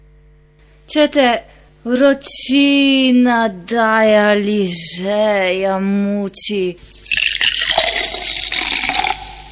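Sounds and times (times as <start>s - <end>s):
speech: 0.9s - 7.2s
cold fizzy drink pouring into a glass: 6.9s - 9.4s.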